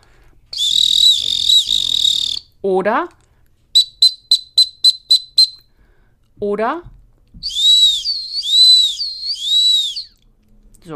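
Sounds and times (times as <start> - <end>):
dog training whistle giving a short search signal: 0.6 - 2.5, 3.8 - 5.6, 7.4 - 10.2
speech: 2.6 - 3.2, 6.4 - 7.5.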